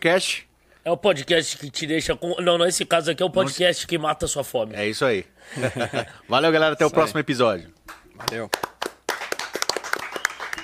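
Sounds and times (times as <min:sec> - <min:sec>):
speech: 0:00.0 - 0:08.7
laughter: 0:05.5 - 0:06.2
few people clapping: 0:07.9 - 0:10.6.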